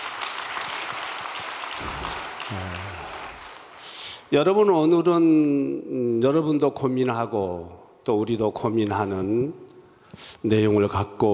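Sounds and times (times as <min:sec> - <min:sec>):
crowd cheer: 0:00.0 - 0:03.8
large audience applause: 0:00.0 - 0:04.0
speech: 0:04.3 - 0:11.3.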